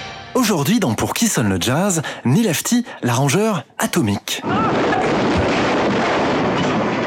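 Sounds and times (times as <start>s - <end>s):
speech: 0.4s - 5.0s
explosion sound effect: 4.5s - 7.0s.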